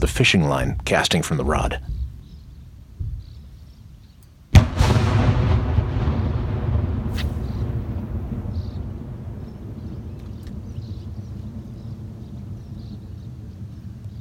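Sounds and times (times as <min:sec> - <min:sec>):
speech: 0:00.0 - 0:02.0
artillery blast: 0:04.5 - 0:12.7
long heavy rumble from artillery blast: 0:04.6 - 0:14.2.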